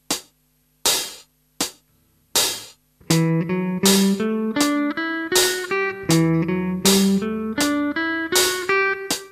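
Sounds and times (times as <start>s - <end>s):
natural minor scale played: 3.1s - 9.3s.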